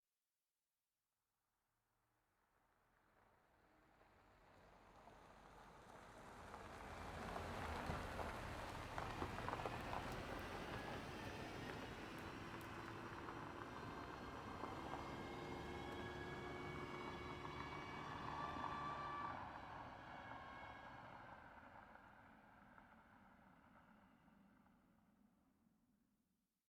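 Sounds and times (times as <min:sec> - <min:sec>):
car on gravel: 0:04.7 - 0:22.0.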